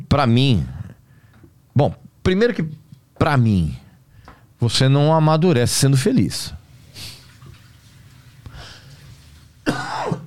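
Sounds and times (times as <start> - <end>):
speech: 0.1 - 0.8, 1.8 - 3.8, 4.6 - 7.1
person coughing hoarsely: 9.6 - 10.2.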